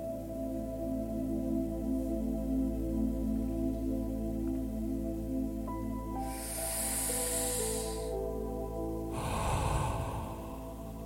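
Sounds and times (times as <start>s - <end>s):
sustained musical drone: 0.0s - 11.0s
calm breathing in and out during a meditation: 6.0s - 11.0s.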